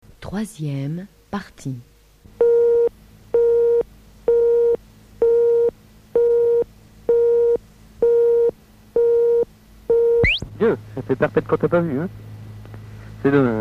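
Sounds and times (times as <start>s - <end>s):
speech: 0.3s - 1.9s, 10.7s - 12.3s, 13.2s - 13.5s
answering machine telephone tone beeping: 2.4s - 10.4s.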